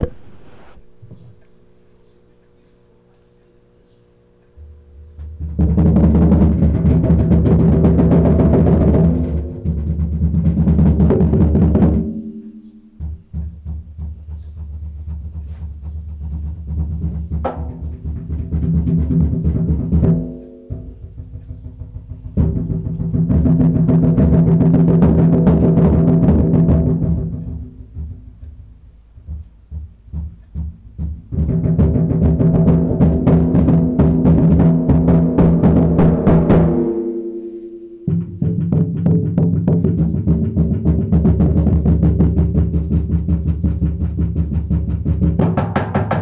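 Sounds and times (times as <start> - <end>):
crazy drums: 0.0 - 2.1, 4.6 - 46.1.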